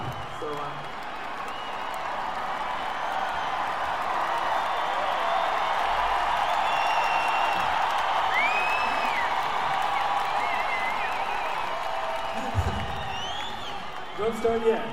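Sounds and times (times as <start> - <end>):
large crowd booing and shouting: 0.0 - 14.9
speech: 0.4 - 1.0, 14.3 - 14.9
scattered whistles from a crowd: 1.4 - 2.0, 6.3 - 14.4.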